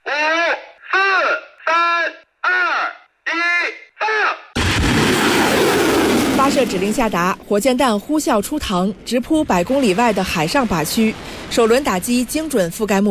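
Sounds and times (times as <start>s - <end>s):
man narrating: 0.0s - 4.6s
multiple rocket launchers firing rockets: 4.6s - 13.0s.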